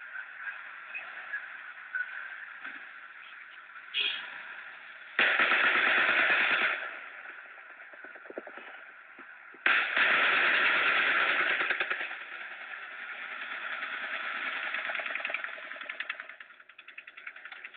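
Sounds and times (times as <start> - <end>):
distant gunfire crackling in bursts: 5.2 - 8.8, 9.6 - 15.5.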